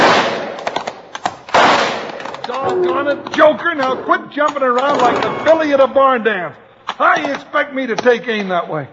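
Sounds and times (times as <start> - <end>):
heavier bursts of gunfire noise: 0.0 - 2.4
rifle shots: 0.0 - 2.4
speech: 2.7 - 8.9.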